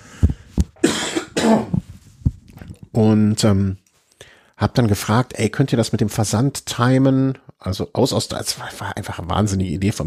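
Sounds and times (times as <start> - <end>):
harsh coughing: 0.8 - 1.8
speech: 1.5 - 1.8, 3.0 - 3.8, 4.6 - 10.0.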